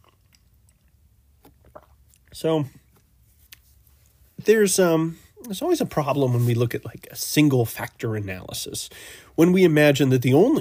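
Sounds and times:
person sipping coffee with wet mouth clicks and slurps: 0.0 - 4.2
speech: 2.3 - 2.8, 4.5 - 10.5.

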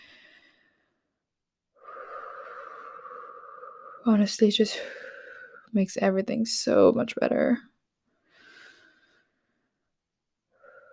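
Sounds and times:
deep breath: 0.0 - 5.7, 8.1 - 9.9, 10.5 - 10.9
speech: 4.0 - 5.0, 5.7 - 7.7.

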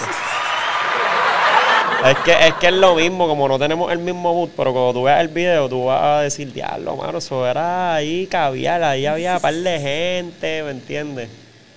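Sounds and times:
small crowd clapping: 0.0 - 2.6
faint cheering: 0.0 - 3.2
laughter: 0.0 - 3.3, 9.2 - 10.0
speech: 2.0 - 11.4.

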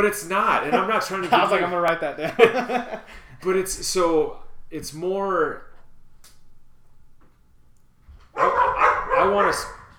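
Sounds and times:
speech: 0.0 - 5.7, 9.2 - 9.8
laughter: 0.4 - 3.6
dogs barking: 8.4 - 9.9.

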